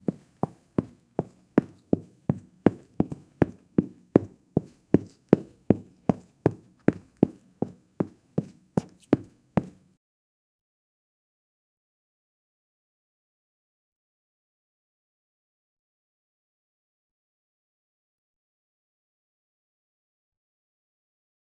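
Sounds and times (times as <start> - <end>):
soft footsteps of a teacher in a classroom: 0.0 - 9.9.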